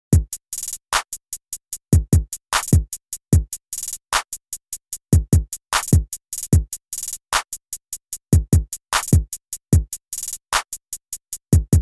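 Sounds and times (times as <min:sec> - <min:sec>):
hip hop trap drum beat: 0:00.2 - 0:01.2, 0:01.8 - 0:04.4, 0:05.1 - 0:07.6, 0:08.3 - 0:10.8, 0:11.4 - 0:11.7.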